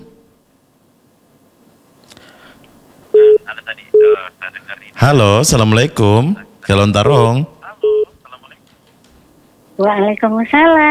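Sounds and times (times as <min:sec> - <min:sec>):
electronic telephone line tones of an incoming call: 0:03.2 - 0:04.2
speech: 0:03.6 - 0:07.6, 0:09.8 - 0:10.8.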